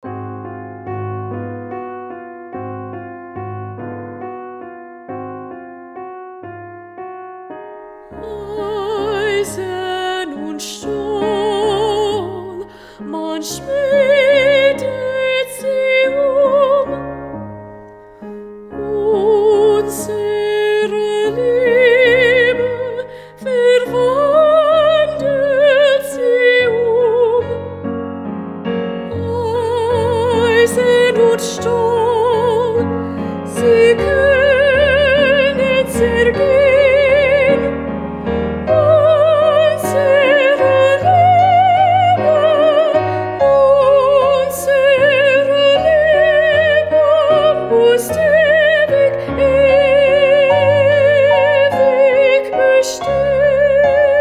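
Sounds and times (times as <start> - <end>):
soprano singing: 0.0 - 54.2.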